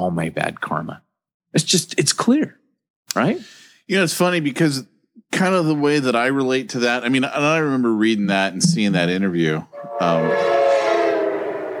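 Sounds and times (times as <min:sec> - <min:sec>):
speech: 0:00.0 - 0:10.6
passing train horn blast: 0:09.7 - 0:11.7.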